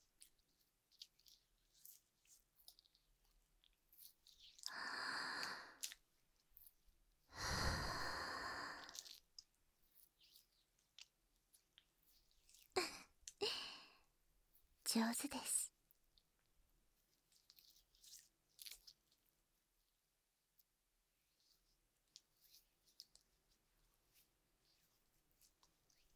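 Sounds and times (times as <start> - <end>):
slow breathing in and out: 4.7 - 5.9, 7.3 - 9.2
speech: 15.0 - 15.6.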